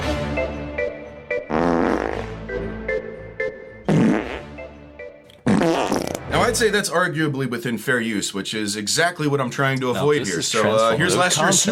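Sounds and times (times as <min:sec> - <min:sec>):
light music track: 0:00.0 - 0:08.6, 0:10.0 - 0:11.7
loud raspy fart sound effects: 0:01.5 - 0:02.5, 0:03.8 - 0:04.6, 0:05.4 - 0:06.3
speech: 0:06.5 - 0:11.7.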